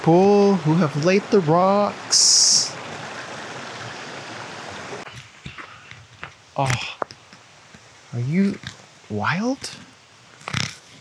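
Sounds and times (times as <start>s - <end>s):
speech: 0.0s - 2.7s, 6.6s - 7.0s, 8.1s - 9.8s
fast high-running stream rushing: 0.0s - 10.9s.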